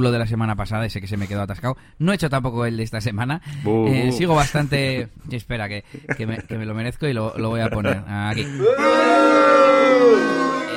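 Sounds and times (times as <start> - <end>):
speech: 0.0 - 10.4
laughter: 6.0 - 6.6, 7.4 - 9.0
crowd booing: 8.4 - 10.7.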